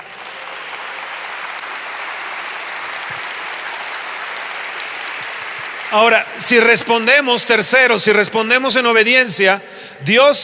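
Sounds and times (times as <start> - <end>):
large group applauding: 0.0 - 7.3
speech: 5.9 - 10.4.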